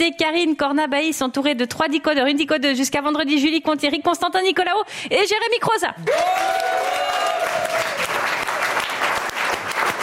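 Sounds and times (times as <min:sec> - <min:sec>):
speech: 0:00.0 - 0:07.4
studio audience applauding at a talk show: 0:06.0 - 0:10.0.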